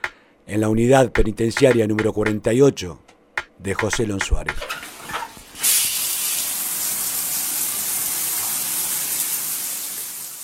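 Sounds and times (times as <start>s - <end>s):
speech: 0.5s - 3.0s, 3.6s - 4.8s
shower water spraying: 4.9s - 10.4s.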